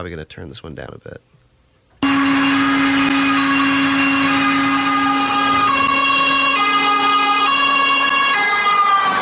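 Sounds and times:
speech: 0.0 - 1.3
ambulance or fire truck emergency siren wailing: 2.0 - 9.2.

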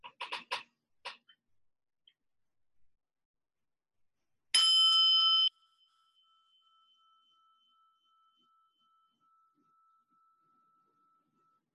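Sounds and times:
meditation bell ringing: 4.6 - 11.7.

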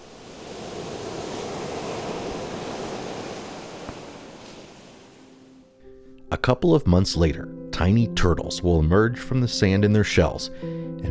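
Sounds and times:
ocean waves breaking on a seashore of the Outer Banks in North Carolina: 0.0 - 5.6
faint breezy hiss: 0.0 - 5.8
speech: 6.3 - 11.0.

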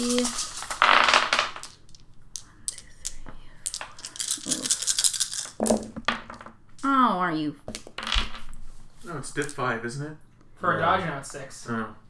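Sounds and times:
several dice clattering across a hard tabletop: 0.0 - 6.9, 7.7 - 8.6
speech: 7.3 - 7.9, 9.1 - 12.0.

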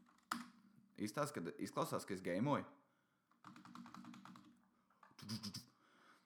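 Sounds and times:
speech: 1.0 - 2.8, 5.3 - 5.6
typing on a loud new computer keyboard: 3.4 - 5.1.

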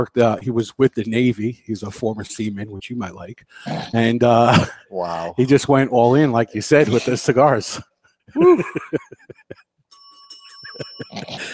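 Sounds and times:
speech: 0.0 - 9.7, 10.8 - 11.5
laughter-like noise: 8.3 - 9.6, 10.4 - 11.5
bright bell ringing: 9.9 - 11.5.

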